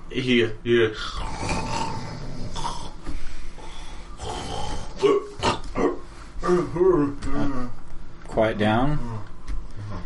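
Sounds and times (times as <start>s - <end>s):
speech: 0.1s - 1.6s, 6.5s - 7.8s, 8.4s - 9.3s
person snoring in another room: 1.1s - 6.8s.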